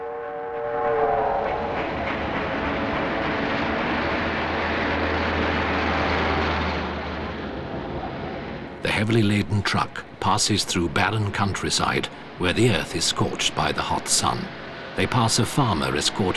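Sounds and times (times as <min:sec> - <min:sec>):
steam train whistle: 0:00.0 - 0:03.9
low droning hum: 0:00.0 - 0:16.3
steam train rumbling and rattling across a viaduct: 0:00.1 - 0:16.3
speech: 0:09.0 - 0:16.3.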